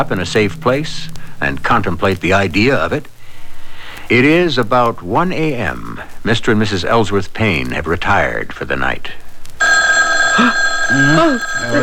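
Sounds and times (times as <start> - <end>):
speech: 0.0 - 3.1, 4.1 - 9.8, 10.4 - 11.8
telephone bell ringing: 9.6 - 11.8.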